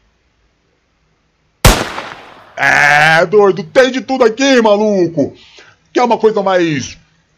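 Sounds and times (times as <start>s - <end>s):
short decaying echo of sniper rifle shot: 1.6s - 2.6s
sniper rifle shot: 1.6s - 2.6s
speech: 2.6s - 7.0s.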